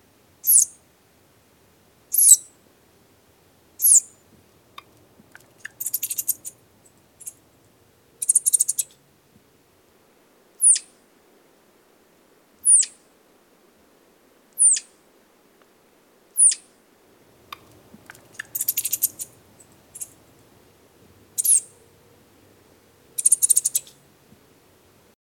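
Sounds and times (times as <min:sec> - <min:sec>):
flying squirrel: 0:00.3 - 0:01.0, 0:01.6 - 0:09.1, 0:10.6 - 0:11.0, 0:12.6 - 0:13.0, 0:14.6 - 0:14.9, 0:16.4 - 0:25.0.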